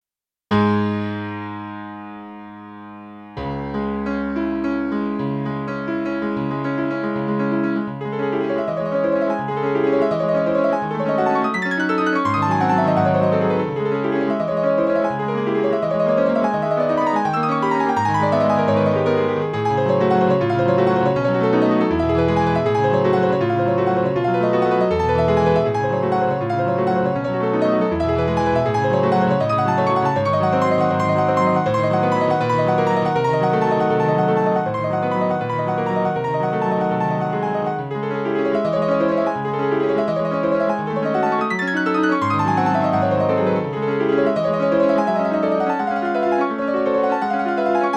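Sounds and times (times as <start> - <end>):
U-110 AC piano: 0.5 - 47.9.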